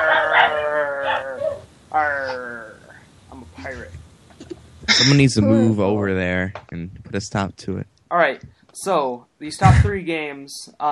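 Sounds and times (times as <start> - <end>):
dog howling: 0.0 - 2.6
speech: 5.0 - 10.8.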